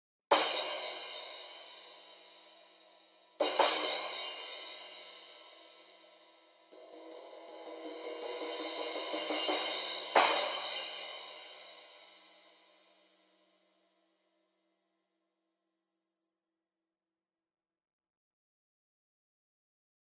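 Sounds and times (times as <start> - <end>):
JazzMaster 14 crash cymbal: 0.3 - 12.8.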